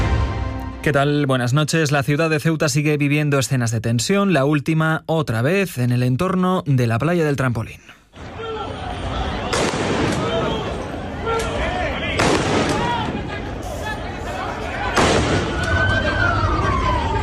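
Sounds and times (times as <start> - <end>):
speech: 0.8 - 8.3
crowd of protesters shouting in Ceuta: 8.2 - 17.2
police gunshots fired outdoors to disperse protesters in Ceuta: 9.5 - 10.8, 12.2 - 13.4, 14.9 - 15.7.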